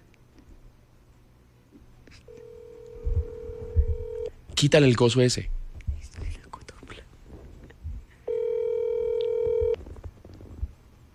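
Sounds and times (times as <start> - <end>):
telephone call tone as a call is rejected: 2.4 - 4.3, 8.3 - 9.8
speech: 4.6 - 5.6
people whispering and speaking: 5.8 - 7.2.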